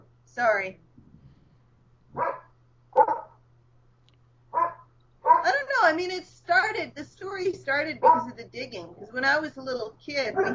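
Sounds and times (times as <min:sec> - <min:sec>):
low steady hum: 0:00.0 - 0:10.5
speech: 0:00.4 - 0:00.9, 0:02.1 - 0:02.4, 0:05.9 - 0:10.5
hunting dogs barking: 0:02.1 - 0:03.4, 0:04.5 - 0:05.6, 0:08.0 - 0:08.4, 0:10.3 - 0:10.5.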